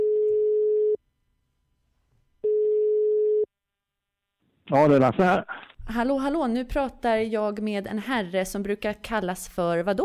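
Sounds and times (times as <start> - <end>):
loud steady telephone line tones: 0.0 - 1.0, 2.4 - 3.5
speech: 4.7 - 10.0.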